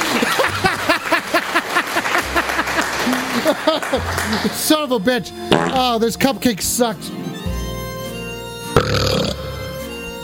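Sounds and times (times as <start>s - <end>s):
laughter: 0.0s - 4.8s
speech: 3.9s - 7.3s
person burping: 5.5s - 5.8s, 8.8s - 9.6s.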